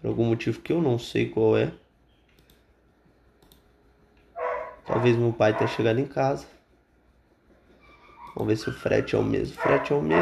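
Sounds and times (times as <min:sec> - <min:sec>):
speech: 0:00.0 - 0:01.8, 0:04.9 - 0:06.6, 0:08.4 - 0:10.2
loud sharp dog bark: 0:04.4 - 0:05.8, 0:09.6 - 0:10.2
dogs barking excitedly: 0:04.4 - 0:06.0, 0:08.2 - 0:10.2.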